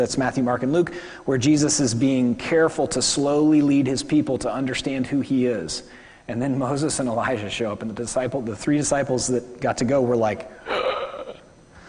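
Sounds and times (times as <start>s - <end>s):
speech: 0.0s - 10.8s
person imitating a gasp during a sermon: 10.6s - 11.8s.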